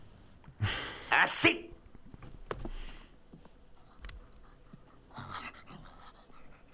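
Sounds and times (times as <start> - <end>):
speech: 1.2 - 1.7
dog panting: 3.7 - 6.7.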